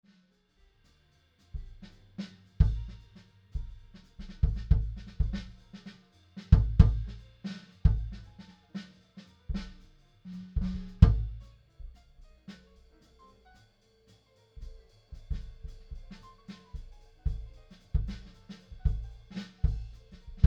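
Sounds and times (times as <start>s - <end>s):
unprocessed kick drum: 2.6s - 5.6s, 6.5s - 7.2s, 7.8s - 8.3s, 9.5s - 9.9s, 10.6s - 12.3s, 14.7s - 16.2s, 16.8s - 20.4s.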